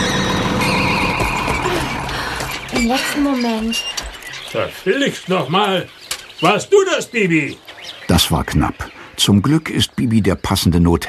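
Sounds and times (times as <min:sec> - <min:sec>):
mowing machine motor roaring with high squealing whine while stopping: 0:00.0 - 0:02.8
speech: 0:02.8 - 0:11.0.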